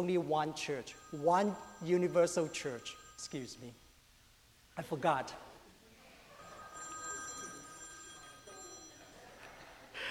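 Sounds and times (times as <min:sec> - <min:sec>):
mobile phone ringing with an electronic ringtone: 0:00.0 - 0:03.7, 0:06.3 - 0:09.4
speech: 0:00.0 - 0:03.8, 0:04.8 - 0:05.5
faint murmur: 0:05.6 - 0:10.0.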